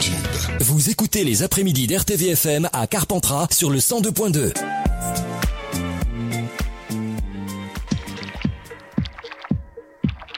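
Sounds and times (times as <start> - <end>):
speech: 0.0 - 5.3
tonal musical backing: 4.5 - 10.3
water dripping in resonant plops: 7.7 - 10.3.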